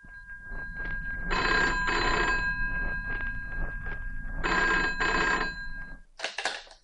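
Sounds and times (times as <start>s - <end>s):
steady hum: 0.0s - 6.2s
telephone bell ringing at a home: 1.3s - 2.5s, 4.4s - 5.8s.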